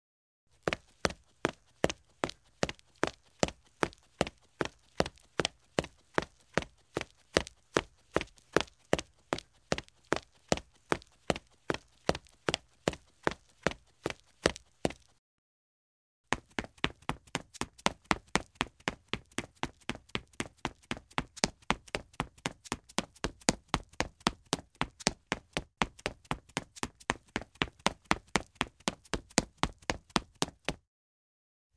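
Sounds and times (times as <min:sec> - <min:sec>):
shoes running on a concrete floor: 0:00.6 - 0:15.2, 0:16.3 - 0:30.8.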